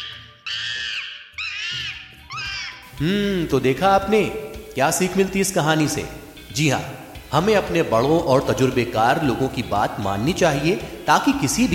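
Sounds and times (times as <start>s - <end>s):
monkey screeching in pain with its tail caught: 0.0s - 2.9s
speech: 3.0s - 11.7s.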